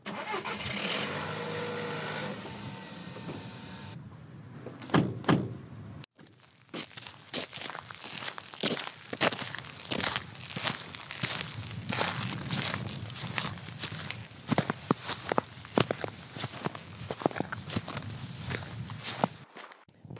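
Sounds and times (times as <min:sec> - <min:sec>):
car engine starting and idling: 0:00.0 - 0:04.0
footsteps crunching outdoors from a car park to the tidal flats at Helmsand: 0:06.1 - 0:19.9.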